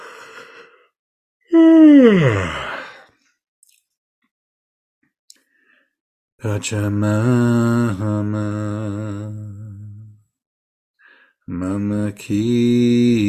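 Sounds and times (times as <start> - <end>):
loud drawn-out yawn by a meditation leader: 1.5 - 3.1
speech: 2.0 - 2.6, 6.4 - 9.4, 11.5 - 13.2.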